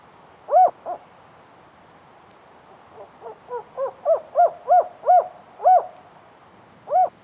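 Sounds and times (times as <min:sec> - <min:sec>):
spotted owl hooting in an old-growth forest park: 0:00.5 - 0:01.0, 0:03.0 - 0:06.0, 0:06.9 - 0:07.2.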